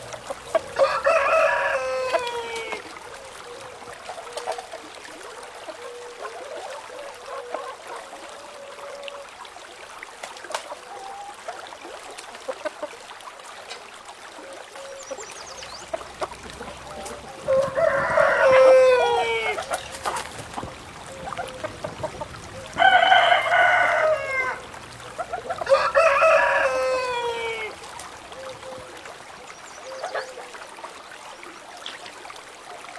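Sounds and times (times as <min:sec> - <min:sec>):
roosters crowing in a countryside setting: 0:00.7 - 0:02.8, 0:17.4 - 0:19.6, 0:22.8 - 0:24.6, 0:25.6 - 0:27.7.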